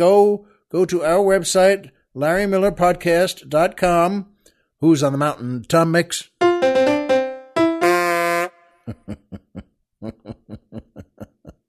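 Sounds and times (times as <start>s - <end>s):
speech: 0.0s - 6.7s, 8.9s - 9.4s
truck horn honking: 7.6s - 8.8s
laughter: 8.9s - 11.6s.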